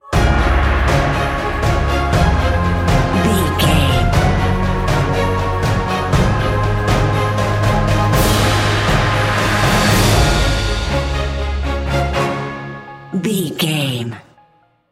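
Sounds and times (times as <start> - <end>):
cinematic corporate music: 0.0 - 13.1.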